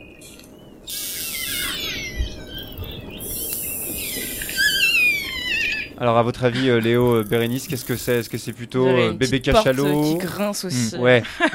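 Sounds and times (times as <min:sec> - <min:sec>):
orcas playing with each other, whistling and squealing: 0:00.8 - 0:06.0
speech: 0:06.0 - 0:11.5
laughter: 0:10.7 - 0:11.5.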